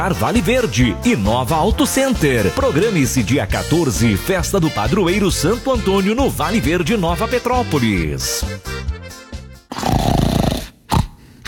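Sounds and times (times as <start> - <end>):
speech: 0.0 - 8.8
loud rattling snoring: 9.7 - 11.4.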